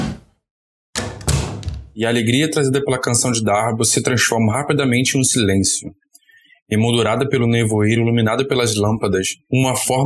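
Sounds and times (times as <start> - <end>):
solid knock: 0.0 - 0.3, 1.0 - 2.0
heavy wooden tavern door flung open: 1.0 - 2.0
speech: 2.0 - 6.0, 6.7 - 10.0.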